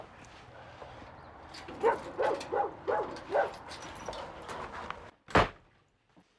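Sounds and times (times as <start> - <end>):
key rattling in a lock: 1.5 - 4.6
dog barking and whining: 1.8 - 3.7.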